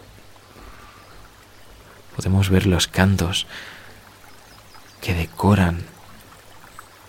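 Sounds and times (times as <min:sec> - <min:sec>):
nearby stream flowing: 0:00.0 - 0:07.0
speech: 0:02.2 - 0:03.8, 0:05.0 - 0:05.9.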